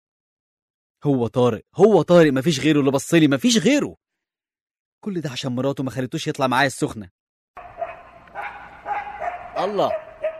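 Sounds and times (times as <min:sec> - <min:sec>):
speech: 0:01.0 - 0:04.0, 0:05.0 - 0:07.7, 0:09.6 - 0:10.1
dogs barking on a deserted shortcut road: 0:07.6 - 0:10.3.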